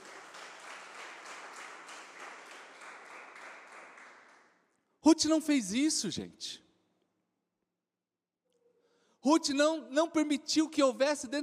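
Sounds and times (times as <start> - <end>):
large crowd applauding: 0.0 - 4.6
speech: 5.1 - 6.6, 9.2 - 11.4.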